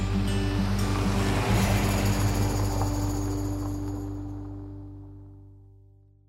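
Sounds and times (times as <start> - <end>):
surf roaring on a sunny Gold Coast beach: 0.1 - 4.4.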